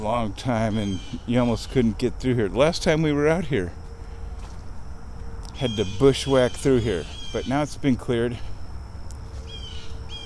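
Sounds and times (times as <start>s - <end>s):
speech: 0.0s - 3.8s, 5.6s - 8.5s
steady low outdoor rumble: 0.0s - 10.2s
short sharp bird calls: 0.5s - 2.0s, 5.5s - 10.2s.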